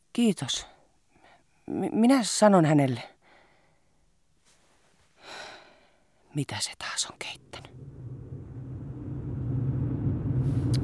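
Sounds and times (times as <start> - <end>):
speech: 0.2 - 0.8, 1.7 - 3.1, 6.3 - 7.7
car driving fast, engine and road drone: 7.4 - 10.8.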